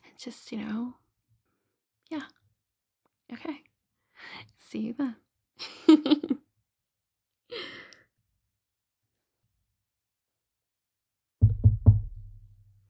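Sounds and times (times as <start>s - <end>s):
speech: 0.2s - 1.0s, 2.1s - 2.4s, 3.3s - 3.7s, 4.3s - 6.4s
knocking on a door: 11.4s - 12.6s.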